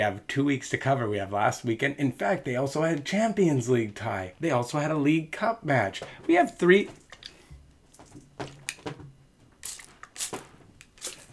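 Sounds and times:
speech: 0.0s - 7.0s
spray bottle squirting water at a cat: 9.6s - 11.3s.

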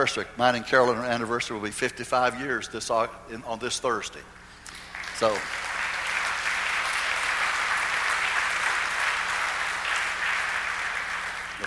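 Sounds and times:
speech: 0.0s - 4.4s, 5.2s - 5.7s
audience applauding: 4.7s - 11.6s.

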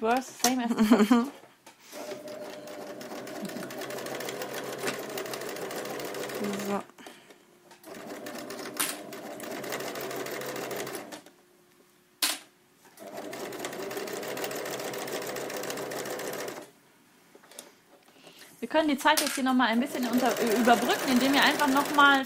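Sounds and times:
speech: 0.0s - 2.0s, 6.4s - 6.9s, 18.7s - 22.2s
laughter: 0.7s - 1.4s
sewing machine stitching the last seam of a garment: 1.9s - 6.8s, 7.8s - 11.3s, 13.0s - 16.7s, 19.7s - 22.2s.

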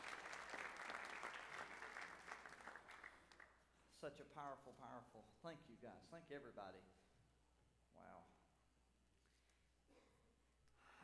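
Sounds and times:
audience at a worship service clapping in praise: 0.0s - 3.6s
speech: 4.0s - 7.1s, 8.0s - 8.4s.

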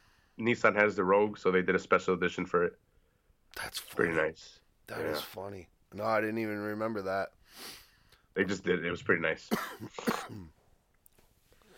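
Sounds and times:
faint noise: 0.0s - 11.7s
speech: 0.4s - 2.9s, 3.6s - 7.8s, 8.4s - 10.6s
loud harsh throaty cough: 9.5s - 10.6s.

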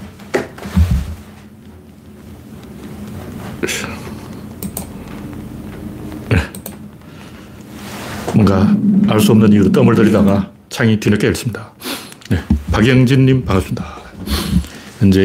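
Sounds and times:
speech: 3.6s - 4.1s, 8.4s - 14.0s, 15.0s - 15.2s
computer mouse clicks: 4.6s - 4.9s, 6.5s - 6.8s
low steady hum: 8.3s - 10.7s.

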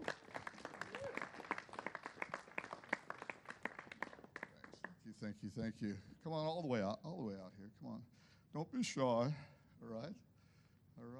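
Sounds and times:
audience clapping: 0.0s - 5.0s
speech: 5.1s - 10.3s.

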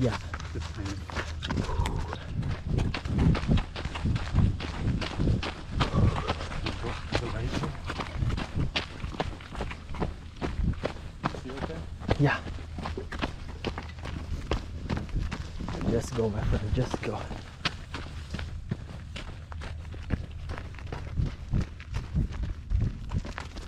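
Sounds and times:
people talking: 0.0s - 2.2s, 5.8s - 7.8s, 11.4s - 12.5s, 15.8s - 17.4s
footsteps of people jogging: 0.0s - 23.6s.

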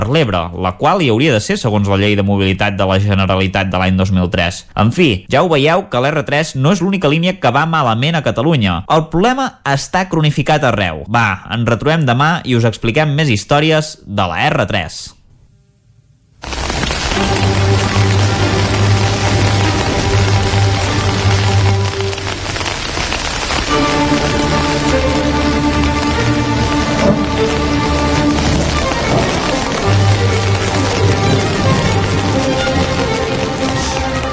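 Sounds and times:
speech: 0.0s - 15.2s
heavy rain: 16.4s - 34.3s.

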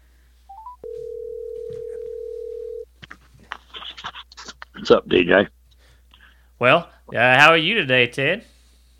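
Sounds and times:
rising beeps of a phone call being placed: 0.5s - 2.8s
speech: 4.8s - 5.6s, 6.6s - 8.5s.

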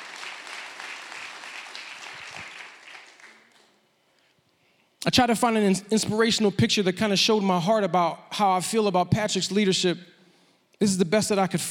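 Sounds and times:
audience applause: 0.0s - 3.7s
speech: 5.0s - 10.1s, 10.8s - 11.6s.

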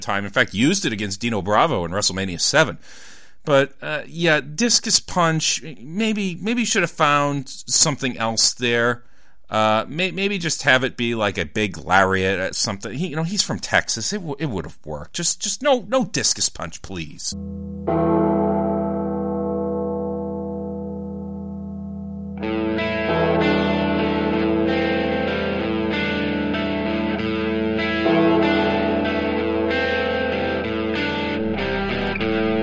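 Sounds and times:
speech: 0.0s - 18.3s
single deep church bell tolling: 17.4s - 32.6s
loud distorted rock band with heavy guitars and drums: 22.4s - 32.6s.

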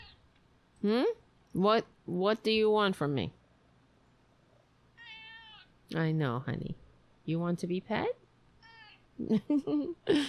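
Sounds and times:
speech: 0.8s - 3.4s, 5.9s - 8.2s, 9.2s - 10.2s
male cat meowing: 5.0s - 5.7s.

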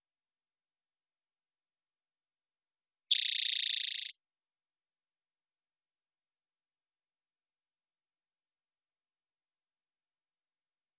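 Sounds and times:
spotted towhee song buzzy trill in Washington: 3.1s - 4.1s.

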